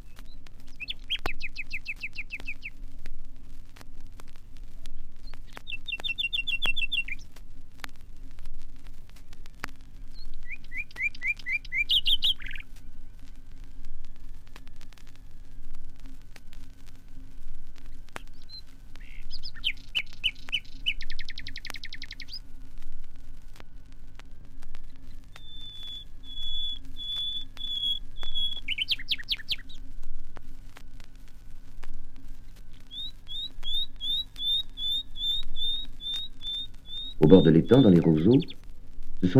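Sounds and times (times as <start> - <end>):
common nightingale singing from a bush: 0.0 - 2.8, 5.2 - 7.3, 10.1 - 14.8, 17.9 - 22.4, 24.7 - 29.9, 32.4 - 38.6
steady low rumble: 0.0 - 39.3
speech: 37.3 - 38.6.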